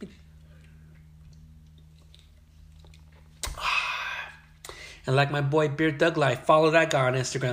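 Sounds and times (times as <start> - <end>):
steady low hum: 0.0 - 7.5
person sipping a beer with mouth clicks and slurps: 0.5 - 4.8
louder breathy burst: 3.4 - 5.1
speech: 5.1 - 7.5.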